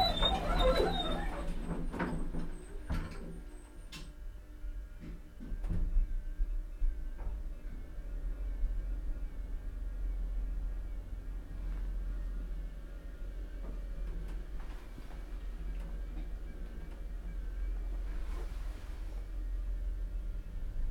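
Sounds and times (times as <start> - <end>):
lift doors sliding shut with clicks and rattles: 0.0 - 3.4
steady low mechanical hum: 0.0 - 20.8.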